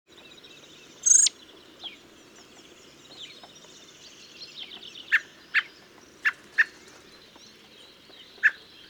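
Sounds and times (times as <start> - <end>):
other birds chirping quietly: 0.2 - 8.8
common blackbird Turdus merula hard clicking chuck calls: 1.0 - 1.3.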